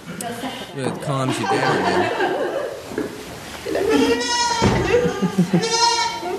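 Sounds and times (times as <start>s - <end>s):
faint murmur: 0.0s - 6.3s
laughter: 0.2s - 2.8s, 4.8s - 6.3s
speech: 0.2s - 6.3s
baby goats bleating: 3.8s - 6.3s.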